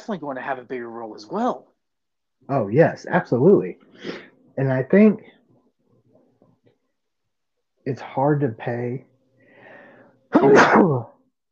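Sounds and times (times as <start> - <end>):
speech: 0.0 - 1.8, 2.4 - 5.4, 7.9 - 9.1, 10.4 - 11.1
person sneezing: 10.3 - 11.1.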